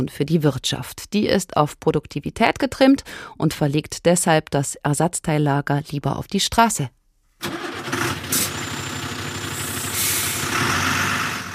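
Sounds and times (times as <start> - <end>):
speech: 0.0 - 7.7
truck engine rumbling as the driver accelerates off: 7.4 - 11.5
truck air brakes releasing with a sharp hiss: 8.3 - 8.6, 9.5 - 11.3.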